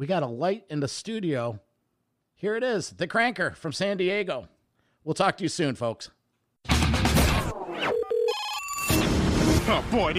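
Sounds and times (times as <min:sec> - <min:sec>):
speech: 0:00.0 - 0:01.7, 0:02.4 - 0:06.2, 0:09.7 - 0:10.1
electronic tones and beeps: 0:07.5 - 0:09.2
loud jangling telephone bell ringing: 0:07.8 - 0:08.9.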